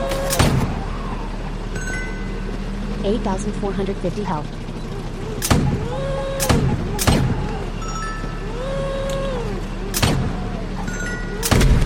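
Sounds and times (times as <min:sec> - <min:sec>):
steady droning video game background with tonal sweeps: 0:00.0 - 0:11.8
speech: 0:03.0 - 0:04.6
video game gunshots fired at a gas tank: 0:05.4 - 0:07.5, 0:09.9 - 0:10.5, 0:11.4 - 0:11.8.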